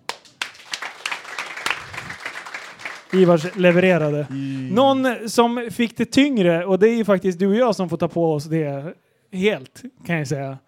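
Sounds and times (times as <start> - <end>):
applause from a small group: 0.0 - 4.9
speech: 3.1 - 10.6.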